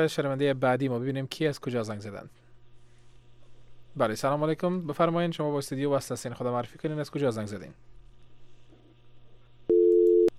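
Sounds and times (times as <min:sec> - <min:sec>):
speech: 0:00.0 - 0:02.4, 0:04.0 - 0:08.0
faint hum: 0:00.0 - 0:10.3
busy signal on a telephone line after the line cuts off: 0:09.7 - 0:10.3.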